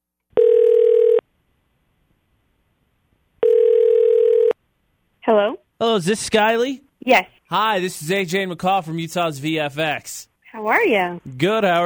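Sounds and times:
electronic phone ringback through the line: 0:00.4 - 0:01.2, 0:03.4 - 0:04.6
speech: 0:05.3 - 0:11.8.

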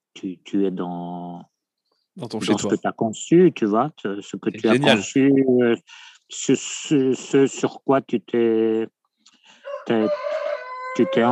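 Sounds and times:
speech: 0:00.2 - 0:01.5, 0:02.2 - 0:09.0, 0:09.8 - 0:10.4, 0:11.0 - 0:11.2
rooster crowing: 0:09.6 - 0:11.2.

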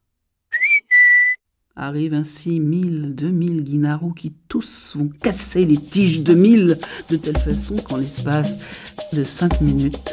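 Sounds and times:
person whistling: 0:00.5 - 0:01.4
speech: 0:01.8 - 0:10.1.

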